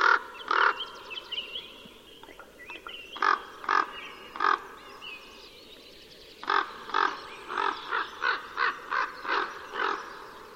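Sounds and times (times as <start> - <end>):
common raven cawing: 0.0 - 0.9, 3.2 - 4.8, 6.4 - 10.5.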